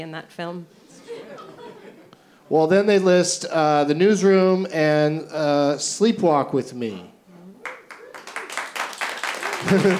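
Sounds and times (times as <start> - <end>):
speech: 0.0 - 1.6, 2.5 - 7.1, 9.6 - 9.9
laughter: 1.0 - 2.1, 9.4 - 9.9
audience applause: 7.6 - 9.9.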